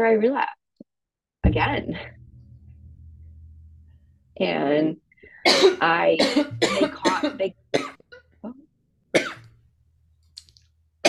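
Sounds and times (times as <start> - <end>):
speech: 0.0 - 0.6, 1.4 - 2.2, 4.4 - 8.6
person coughing: 5.5 - 8.0, 9.2 - 9.5.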